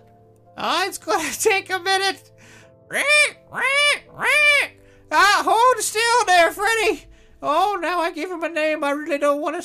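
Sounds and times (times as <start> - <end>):
speech: 0.6 - 9.6
person imitating pig squeals: 2.9 - 5.4.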